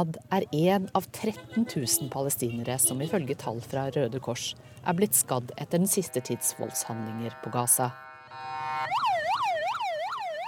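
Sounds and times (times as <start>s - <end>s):
speech: 0.0s - 9.0s
ambulance siren in Gaza: 6.2s - 10.4s.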